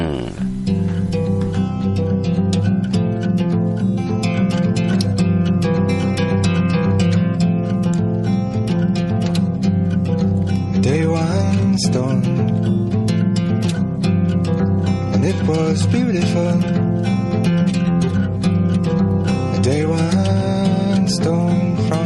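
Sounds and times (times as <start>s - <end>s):
person singing gentle acoustic song: 0.0s - 0.8s, 10.8s - 12.5s, 15.2s - 16.8s, 19.6s - 22.0s
picked acoustic guitar notes: 0.0s - 22.0s.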